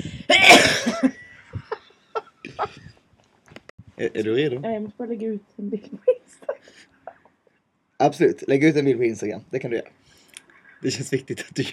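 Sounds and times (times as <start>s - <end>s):
person coughing during a microphone test: 0.3s - 1.2s
speech: 4.0s - 6.5s, 8.0s - 10.0s, 10.8s - 11.7s.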